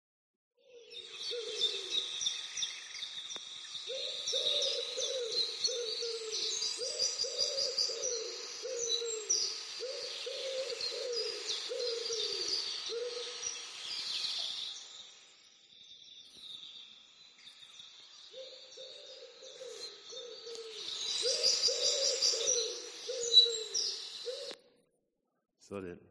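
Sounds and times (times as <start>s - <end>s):
faint high chirping of birds or insects: 0.7s - 24.8s
doves cooing: 0.8s - 2.1s, 3.9s - 13.4s, 18.4s - 24.7s.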